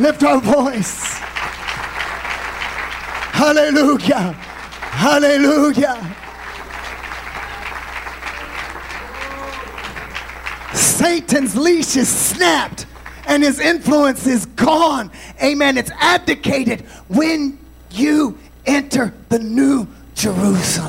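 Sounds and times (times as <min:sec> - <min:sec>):
speech: 0:00.0 - 0:01.3, 0:03.4 - 0:06.2, 0:11.0 - 0:20.8
congregation clapping: 0:00.0 - 0:14.1.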